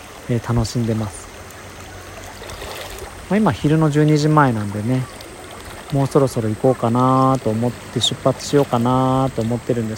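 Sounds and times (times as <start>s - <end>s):
flowing river stream water: 0.0s - 9.9s
speech: 0.3s - 1.3s, 3.3s - 5.2s, 5.9s - 9.9s.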